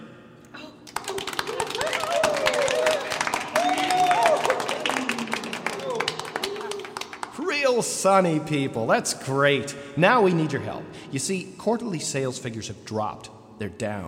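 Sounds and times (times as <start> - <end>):
audience applause: 0.9 - 7.5
scattered whoops and cheering voices: 1.1 - 7.0
speech: 7.8 - 14.0.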